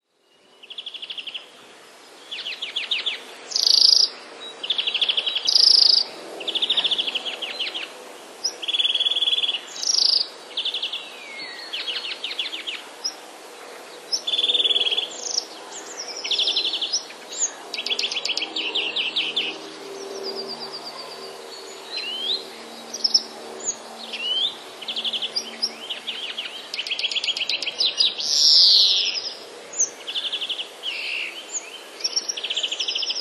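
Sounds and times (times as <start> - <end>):
European greenfinch calling: 2.4 - 13.2, 14.1 - 19.8, 21.6 - 33.1.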